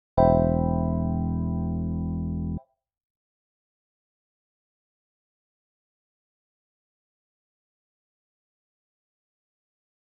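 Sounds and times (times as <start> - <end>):
C major 7 chord with E in the bass: 0.2 - 2.6.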